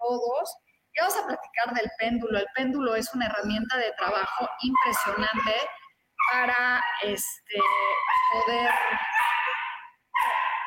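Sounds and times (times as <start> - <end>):
speech: 0.2 - 9.1
dog barking and yelping: 4.0 - 10.6.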